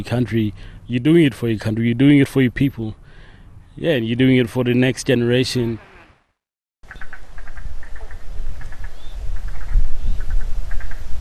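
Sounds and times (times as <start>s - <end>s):
speech: 0.0s - 3.0s, 3.8s - 5.9s
Murray Valley froglets giving high-pitched eek calls: 6.9s - 11.1s.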